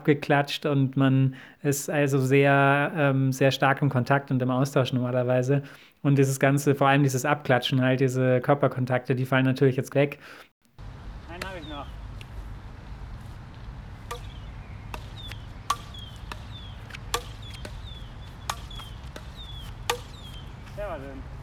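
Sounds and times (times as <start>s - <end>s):
speech: 0.0s - 10.5s
low rumble: 10.8s - 16.4s
crossminton racket smack: 14.0s - 20.4s
crossminton ball whistling through air during a rally: 14.1s - 20.8s.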